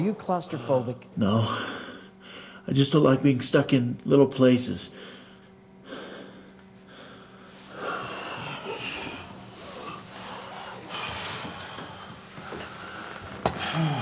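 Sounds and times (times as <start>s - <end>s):
speech: 0.0s - 1.8s, 2.6s - 5.2s
heavy labored breathing: 1.3s - 2.7s, 4.9s - 14.0s.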